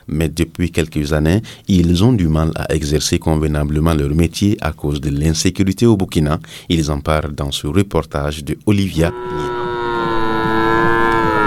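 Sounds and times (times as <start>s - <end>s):
speech: 0.1s - 10.0s
cattle lowing at a livestock market: 9.1s - 11.4s.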